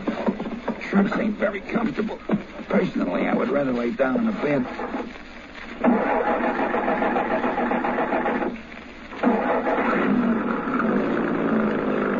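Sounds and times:
speech: 0.9s - 6.6s
truck engine cranking, starting and running: 5.8s - 8.5s, 9.1s - 12.1s.

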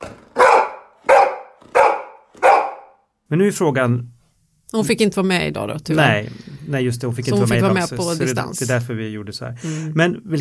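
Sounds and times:
happy female dog barking: 0.3s - 3.0s
speech: 3.3s - 4.1s, 4.7s - 10.3s.

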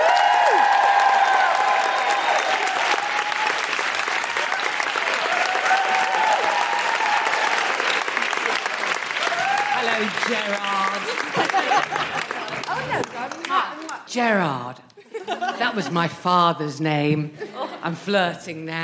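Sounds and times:
audience applause for an arriving guest: 0.0s - 14.0s
laughter: 10.4s - 13.4s, 15.0s - 16.2s, 17.3s - 18.0s
speech: 14.1s - 18.8s.

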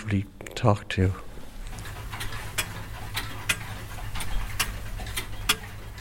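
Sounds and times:
speech: 0.1s - 1.3s
antique pocket watches from about 1800 to 1820 ticking: 1.7s - 5.9s.

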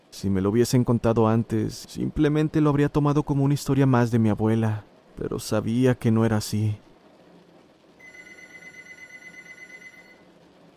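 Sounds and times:
speech: 0.2s - 6.9s
old landline telephone bell ringing: 8.0s - 10.3s.

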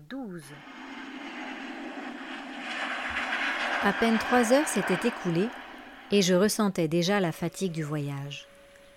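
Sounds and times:
speech: 0.1s - 0.8s, 3.8s - 8.5s
airplane engine drone in the cabin during flight: 0.5s - 6.6s.

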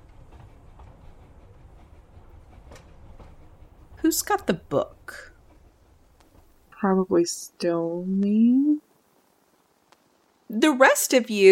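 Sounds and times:
rail joints clacking: 0.0s - 7.2s
train rumbling to a halt: 0.0s - 7.2s
speech: 4.1s - 5.3s, 6.8s - 8.8s, 10.5s - 11.4s.

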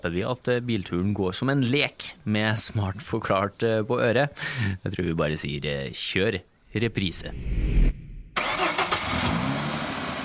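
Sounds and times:
speech: 0.0s - 7.9s
car engine starting and running: 7.9s - 10.2s.

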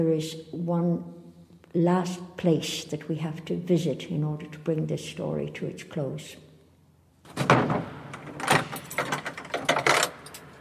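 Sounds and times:
speech: 0.0s - 6.4s
heavy mausoleum door closing thud: 7.3s - 9.8s.

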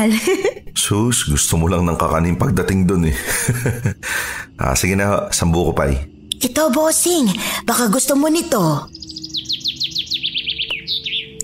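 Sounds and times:
laughter: 0.0s - 0.7s, 3.1s - 4.2s
speech: 0.0s - 9.2s
handmade wooden bird-call whistle blown: 8.9s - 11.4s.

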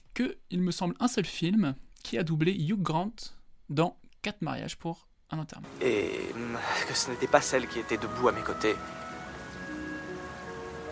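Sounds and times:
speech: 0.2s - 9.0s
steady rain falling on a surface: 5.6s - 10.9s.

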